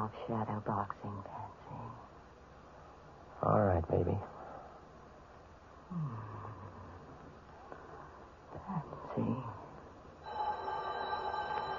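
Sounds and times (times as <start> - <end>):
speech: 0.0 - 2.1, 3.4 - 4.4, 5.9 - 6.4, 8.6 - 9.6
telephone ringing with a trilling electronic tone: 10.2 - 11.7.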